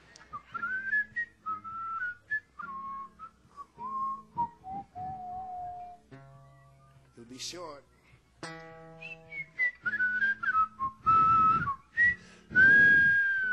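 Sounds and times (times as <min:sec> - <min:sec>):
two people whistling a slow melody together: 0:00.1 - 0:06.0, 0:09.0 - 0:13.5
speech: 0:07.4 - 0:07.8.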